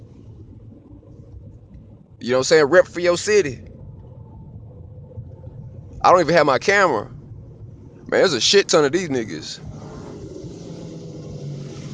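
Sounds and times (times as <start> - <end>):
speech: 2.2 - 3.7, 6.0 - 7.2, 8.1 - 9.7
several motorcycle engines rumbling: 5.9 - 11.9.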